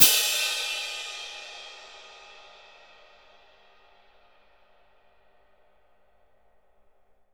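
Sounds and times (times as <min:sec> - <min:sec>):
cymbal percussion: 0:00.0 - 0:05.0.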